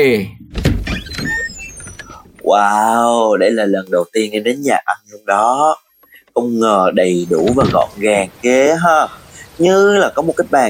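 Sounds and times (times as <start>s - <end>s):
speech: 0.0s - 0.4s, 2.5s - 5.8s, 6.4s - 10.6s
door opening with rattling clunk: 0.5s - 2.4s, 7.4s - 8.0s
creaky door squeal: 0.8s - 2.5s.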